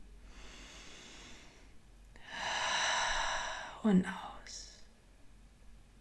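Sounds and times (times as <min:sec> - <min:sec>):
deep breath drawn in during a guided meditation: 0:00.2 - 0:03.8
speech: 0:03.8 - 0:04.6.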